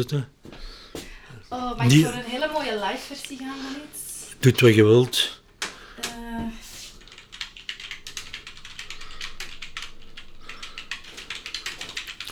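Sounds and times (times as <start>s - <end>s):
speech: 0.0s - 0.4s, 1.5s - 5.4s
typing on a computer keyboard in a radio studio: 5.6s - 12.3s.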